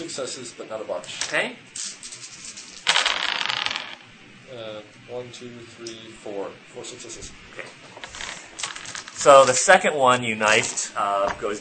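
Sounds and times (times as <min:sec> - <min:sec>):
speech: 0:00.1 - 0:02.1, 0:04.5 - 0:08.2, 0:09.2 - 0:11.5
dice clattering across a hard surface: 0:02.7 - 0:04.0, 0:08.0 - 0:09.6.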